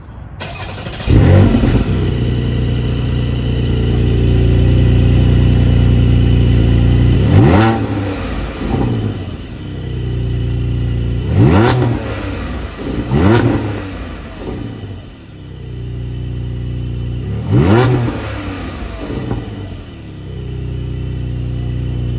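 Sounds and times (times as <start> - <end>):
Porsche 718 Boxster GTS sports car: 0.0 - 22.1.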